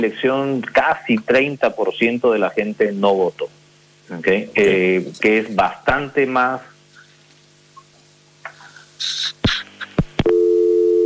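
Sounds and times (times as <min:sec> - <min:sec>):
speech: 0:00.0 - 0:06.7, 0:09.0 - 0:09.4
telephone busy tone after a dropped call: 0:10.3 - 0:11.0.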